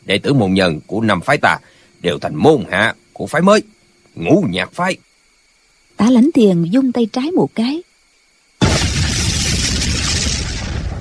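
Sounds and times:
speech: 0.0 - 5.1, 6.0 - 7.9
firecrackers exploding on both sides of mountains: 8.6 - 10.9.

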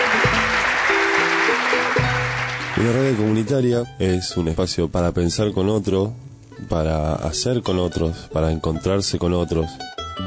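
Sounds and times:
applause at a community gathering: 0.0 - 3.5
speech: 2.8 - 10.0.

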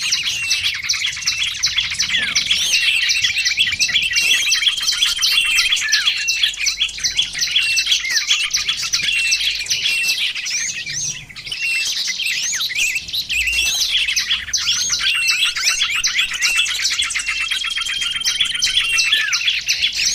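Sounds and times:
lovebirds chattering with high clipped chirps: 0.0 - 20.1.

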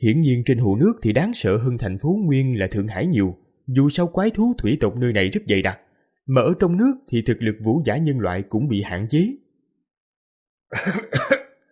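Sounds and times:
speech: 0.0 - 9.4, 10.7 - 11.4
injured person giving raspy coughs: 10.7 - 11.6.

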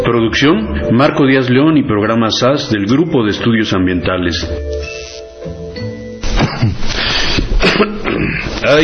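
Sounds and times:
speech: 0.2 - 4.9, 8.7 - 8.8
coughing caught on an open microphone: 6.3 - 8.6.

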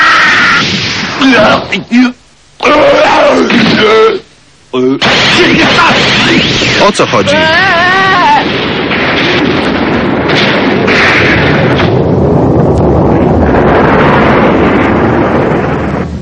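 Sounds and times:
loud explosion in an animated fight scene: 0.3 - 1.7, 5.0 - 16.2
speech: 1.3 - 9.6.

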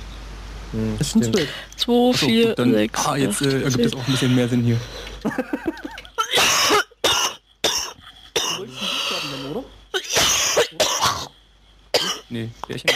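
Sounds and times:
speech: 0.7 - 5.9, 12.3 - 12.9
laughter: 5.2 - 6.3
person coughing hard at a game night: 6.2 - 8.7, 10.0 - 12.3.

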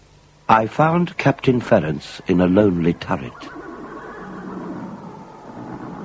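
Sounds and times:
low continuous rumble: 0.0 - 6.0
speech: 0.5 - 3.6
horses neighing in stables: 1.8 - 6.0.

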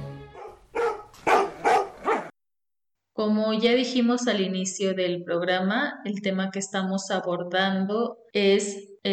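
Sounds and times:
dogs barking: 0.3 - 2.3
speech: 3.2 - 9.1.

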